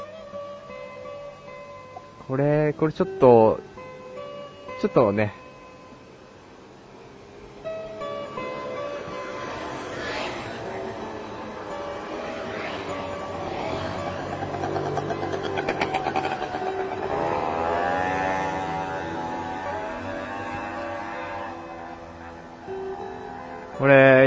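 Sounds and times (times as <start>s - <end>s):
speech: 2.3s - 3.7s, 4.8s - 5.4s
several motorcycles roaring past at night: 6.9s - 24.2s.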